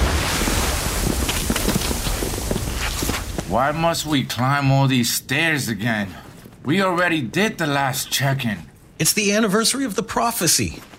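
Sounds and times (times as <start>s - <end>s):
sea waves washing heard from a stone tower by the sea: 0.0s - 3.6s
gusty wind by the sea: 0.0s - 9.6s
speech: 3.5s - 10.9s.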